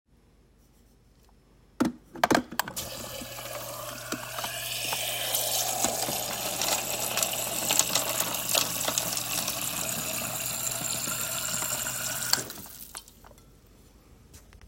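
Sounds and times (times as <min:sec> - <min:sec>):
water dispenser: 0:02.7 - 0:13.3.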